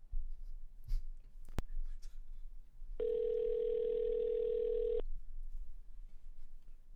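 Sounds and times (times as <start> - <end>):
low rustle: 0.0 - 6.9
telephone ringing over the line as a call is patched in: 3.0 - 5.0.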